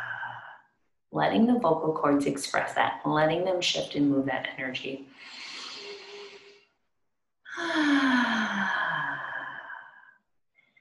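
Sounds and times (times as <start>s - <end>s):
speech: 1.1s - 5.4s
deep breaths in through the nose during guided breathing practice: 5.1s - 6.9s, 7.5s - 10.7s.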